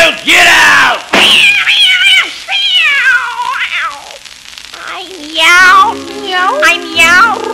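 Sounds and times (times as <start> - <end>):
speech: 0.1 - 1.7
cat meowing: 2.7 - 7.5.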